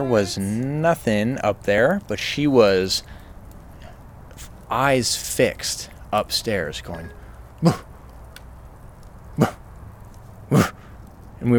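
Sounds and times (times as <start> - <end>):
speech: 0.0 - 3.2, 4.7 - 7.9, 9.4 - 9.6
person imitating a dog barking: 7.6 - 7.8, 9.4 - 9.6, 10.5 - 10.8.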